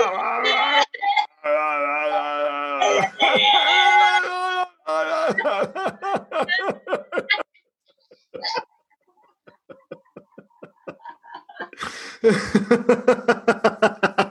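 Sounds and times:
person playfully imitating a raging, crying toddler: 0:00.0 - 0:05.8
laughter: 0:02.9 - 0:03.8, 0:05.0 - 0:14.2.

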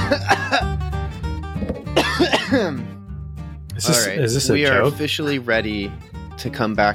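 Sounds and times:
person coughing: 0:00.0 - 0:00.7, 0:01.9 - 0:02.8
speech: 0:00.1 - 0:00.4, 0:03.9 - 0:06.9
person clearing throat: 0:01.7 - 0:02.9.

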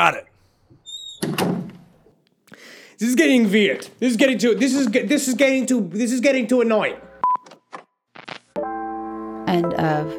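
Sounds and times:
speech: 0:00.0 - 0:00.3, 0:03.0 - 0:07.1, 0:09.5 - 0:10.1
door squeaking: 0:00.8 - 0:01.9
door thumping and rattling as it is pulled and pushed: 0:01.2 - 0:02.0.

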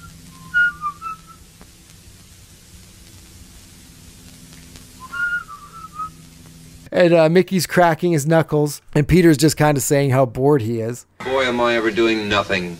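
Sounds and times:
two boys whistling in a bedroom: 0:00.0 - 0:01.4, 0:05.0 - 0:06.2
steady low hum: 0:00.0 - 0:12.7
speech: 0:07.0 - 0:12.7.

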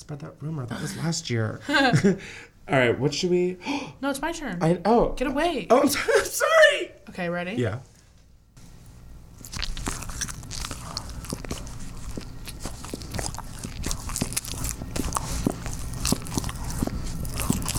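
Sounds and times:
speech: 0:00.0 - 0:07.9
person biting and chewing a mini bagel: 0:08.6 - 0:17.7.

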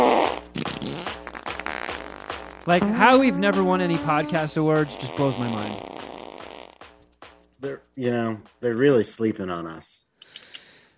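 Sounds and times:
long loud sputtering fart: 0:00.0 - 0:06.9
speech: 0:02.6 - 0:05.9, 0:07.6 - 0:10.0.

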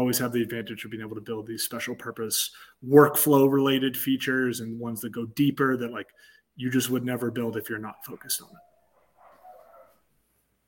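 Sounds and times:
speech: 0:00.0 - 0:08.7
dog barking and yelping: 0:07.9 - 0:10.1.

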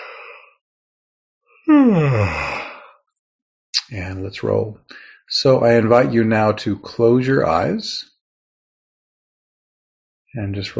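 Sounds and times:
speech: 0:01.7 - 0:02.6, 0:03.9 - 0:08.1, 0:10.3 - 0:10.7
person yawning: 0:01.7 - 0:02.9.

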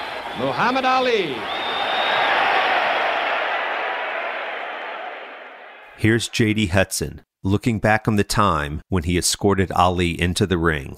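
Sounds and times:
large arena crowd yelling and screaming: 0:00.0 - 0:06.0
speech: 0:00.4 - 0:01.6, 0:06.0 - 0:10.9.

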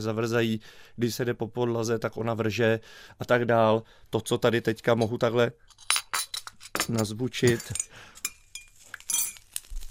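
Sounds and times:
speech: 0:00.0 - 0:06.0, 0:06.9 - 0:08.1
spoon clinking metallically: 0:05.0 - 0:09.6
spoon scooping and tipping sugar into a cup: 0:07.6 - 0:09.7.

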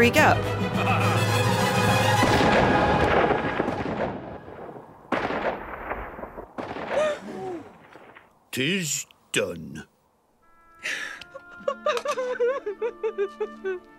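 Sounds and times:
speech: 0:00.0 - 0:01.0, 0:08.6 - 0:09.9, 0:10.8 - 0:11.1, 0:11.8 - 0:13.9
gunshots fired at a stuffed bunny echoing through a tiny town: 0:02.2 - 0:07.2
laughter: 0:10.9 - 0:13.9.

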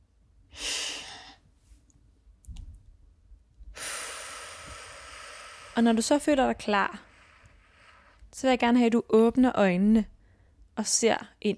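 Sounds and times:
long steady breath out: 0:00.5 - 0:01.4, 0:03.8 - 0:06.0, 0:06.9 - 0:08.2
short sharp breath in: 0:00.5 - 0:01.4, 0:03.7 - 0:08.2
speech: 0:05.8 - 0:07.1, 0:08.4 - 0:10.1, 0:10.8 - 0:11.5.

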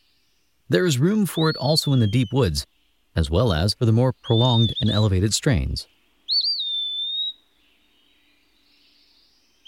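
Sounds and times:
speech: 0:00.7 - 0:06.0
eastern wood pewee whistled call: 0:01.1 - 0:02.7, 0:04.2 - 0:05.2, 0:06.3 - 0:09.6.

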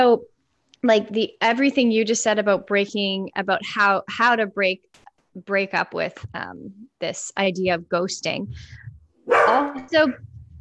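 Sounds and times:
speech: 0:00.0 - 0:10.3
puppy barking and yelping: 0:09.3 - 0:09.8.

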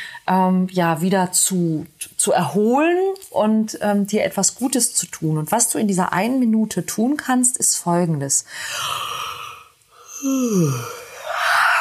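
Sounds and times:
steady hiss-like noise: 0:00.0 - 0:11.8
speech: 0:00.2 - 0:09.3, 0:10.2 - 0:11.0
drawn-out human yawn: 0:08.7 - 0:11.8.

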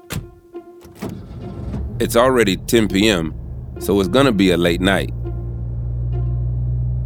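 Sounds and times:
clunks and clicks: 0:00.0 - 0:04.3
car engine turning over and rumbling: 0:00.0 - 0:07.0
speech: 0:02.0 - 0:05.2.

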